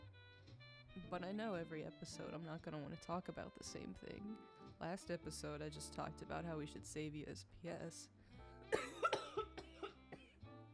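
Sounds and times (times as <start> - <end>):
speech: 1.0 - 8.8
person coughing harshly while high on cannabis: 8.7 - 10.4.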